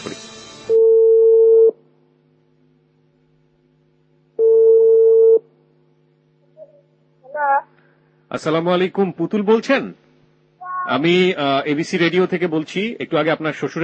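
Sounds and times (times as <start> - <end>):
telephone call being connected with mid-pitched ringing tones: 0.8 - 1.7, 4.4 - 5.4
speech: 8.3 - 10.0, 10.9 - 13.8.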